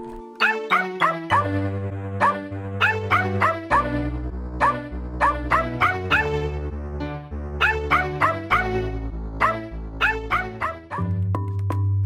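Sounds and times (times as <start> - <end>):
dogs barking and yipping: 0.4 - 1.6, 2.2 - 6.5, 9.4 - 11.1
sustained musical bass line like a playful jingle: 1.2 - 12.0.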